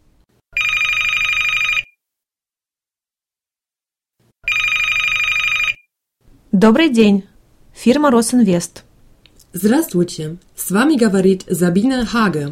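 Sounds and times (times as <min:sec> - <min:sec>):
telephone ringing with a loud steady electronic trill: 0:00.6 - 0:02.0, 0:04.4 - 0:05.9
speech: 0:06.5 - 0:08.9, 0:09.5 - 0:12.4.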